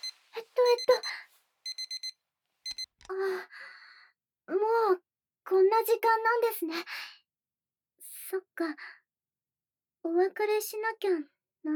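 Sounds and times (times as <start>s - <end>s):
electronic alarm clock beeping: 0.0s - 3.0s
speech: 5.8s - 7.0s, 8.3s - 9.0s, 10.0s - 11.7s.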